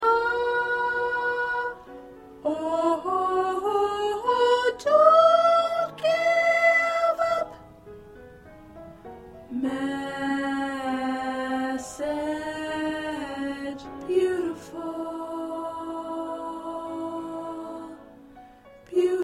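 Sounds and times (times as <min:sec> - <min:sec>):
soprano singing: 0:00.0 - 0:19.2.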